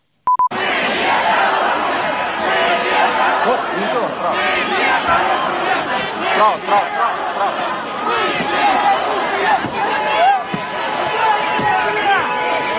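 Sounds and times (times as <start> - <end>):
short electronic beeps: 0.2 - 0.5
large crowd of roughly a hundred people chanting and shouting: 0.5 - 12.7
speech: 6.4 - 7.6.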